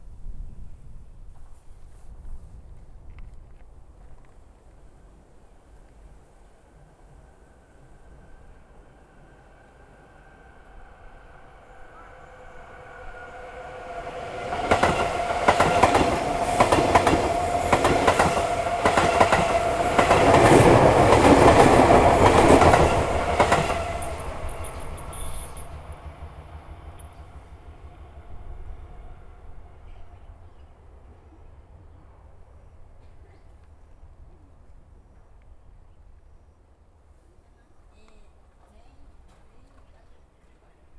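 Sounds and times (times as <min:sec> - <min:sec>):
train passing: 0:05.7 - 0:34.2.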